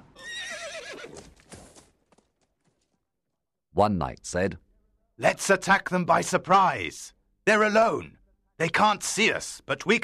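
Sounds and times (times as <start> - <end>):
horses neighing across a river at night: 0.0 - 1.4
hooves clip-clopping: 0.8 - 3.0
speech: 3.8 - 10.0.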